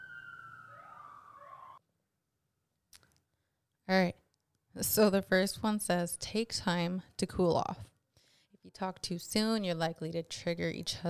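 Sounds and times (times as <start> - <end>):
passing emergency vehicle siren wailing: 0.0 - 1.8
speech: 3.9 - 4.2, 4.8 - 7.9, 8.7 - 11.0.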